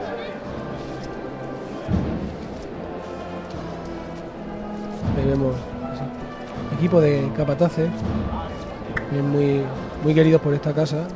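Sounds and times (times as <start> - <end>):
low crowd murmur: 0.0 - 11.1
many feet of float bearers dragging and shuffling: 0.4 - 6.8
heavy thud: 1.8 - 2.8, 8.0 - 9.1
speech: 5.2 - 6.2, 6.8 - 8.4, 9.1 - 11.1.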